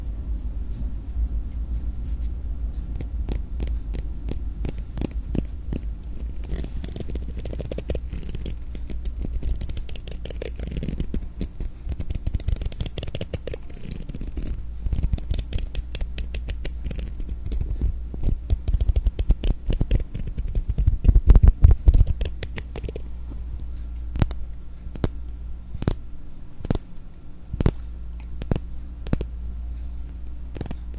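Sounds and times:
low steady hum: 0.0 - 30.9
things rubbed and moved against a microphone: 1.9 - 23.5, 29.9 - 30.9.

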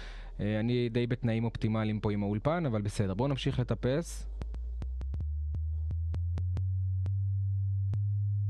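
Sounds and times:
speech: 0.4 - 4.3
low-frequency sine test tone around 100 Hz: 4.8 - 8.4.

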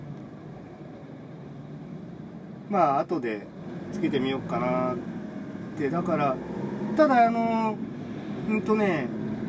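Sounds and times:
car engine drone heard from inside the vehicle: 0.0 - 9.4
road noise: 0.0 - 9.4
speech: 2.7 - 5.1, 5.8 - 7.9, 8.5 - 9.2.

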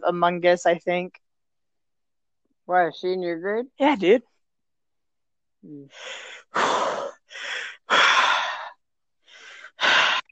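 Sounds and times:
speech: 0.0 - 1.2, 2.7 - 4.3, 5.6 - 8.1
heavy rhythmic breathing: 5.9 - 10.3.

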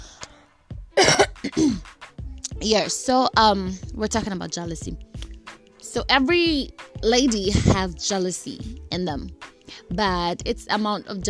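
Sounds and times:
dry coughing: 1.0 - 1.9
speech: 1.4 - 1.9, 2.6 - 5.1, 6.0 - 11.2.

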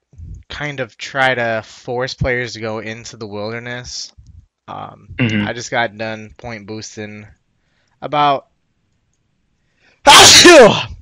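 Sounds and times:
speech: 0.6 - 7.4, 8.0 - 8.5, 10.0 - 10.9
person sneezing: 5.2 - 5.5.

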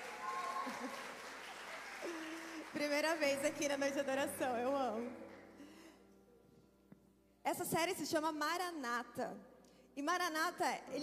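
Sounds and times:
audience applause at a worship night: 0.0 - 3.8
speech: 2.8 - 5.2, 7.5 - 11.0.

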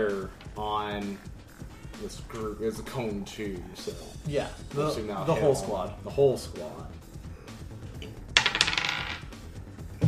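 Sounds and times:
speech: 0.0 - 1.4, 2.0 - 7.1
die rolled on a table during a tabletop game: 8.4 - 9.3.

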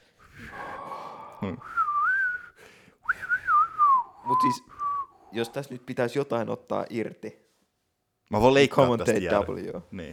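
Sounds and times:
speech: 1.4 - 1.8, 4.3 - 7.4, 8.3 - 10.1
person whistling wavering warbling phrases imitating an empty bladder: 1.4 - 5.2.

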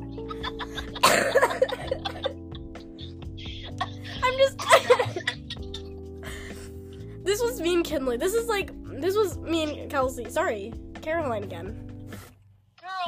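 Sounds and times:
harsh breathy coughing: 0.0 - 6.6
steady musical backing: 0.0 - 12.4
laughter: 0.1 - 6.6
speech: 7.9 - 11.8.

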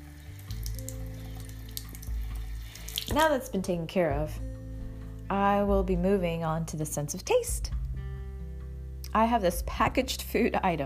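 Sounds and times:
tap water running into a sink while rinsing hands: 0.0 - 3.6
speech: 3.1 - 4.5, 5.3 - 7.8, 9.2 - 10.8.

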